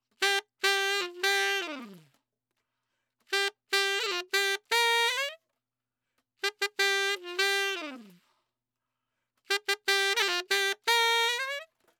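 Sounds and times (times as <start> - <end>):
trad jazz saxophone in G major: 0.1 - 2.2, 3.3 - 5.4, 6.4 - 8.3, 9.5 - 11.8.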